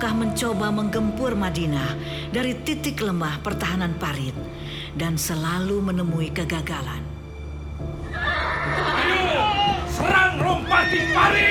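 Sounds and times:
speech: 0.0 - 7.1, 10.0 - 11.4
horse neighing: 8.1 - 9.8.

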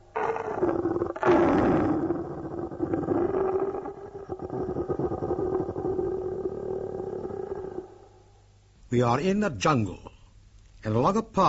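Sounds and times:
lion roaring and growling: 0.0 - 8.0
speech: 9.0 - 10.1, 10.8 - 11.4.

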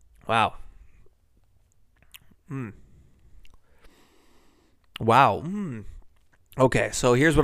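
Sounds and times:
faint noise: 0.0 - 7.4
speech: 0.3 - 0.6, 2.5 - 2.8, 5.0 - 5.9, 6.6 - 7.4
soft mouth clicks: 1.7 - 3.7, 4.8 - 6.6.

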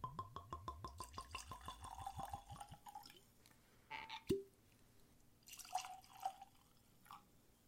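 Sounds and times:
whiskey glugging from a bottle into glasses: 0.1 - 3.2, 5.5 - 7.1.

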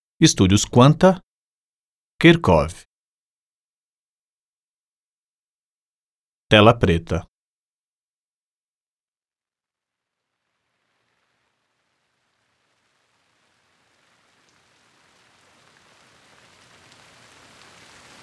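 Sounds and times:
speech: 0.2 - 1.2, 2.2 - 2.9, 6.5 - 7.3
steady rain falling: 10.0 - 18.2.

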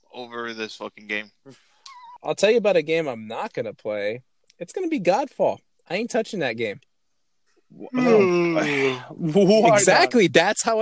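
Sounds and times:
speech: 0.2 - 6.9, 7.7 - 10.7
person yawning with a loud voiced groaning exhale: 7.8 - 9.1.

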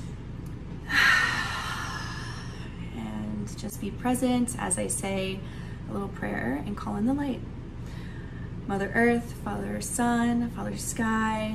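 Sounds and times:
deep breath drawn in slowly: 0.8 - 2.8, 7.8 - 8.6
speech: 3.5 - 7.6, 8.7 - 11.5.

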